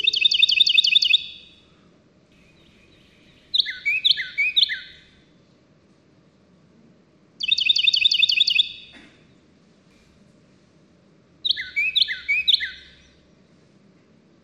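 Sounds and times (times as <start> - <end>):
Carolina wren singing: 0.0 - 1.6, 2.4 - 5.2, 7.4 - 9.0, 11.4 - 13.4.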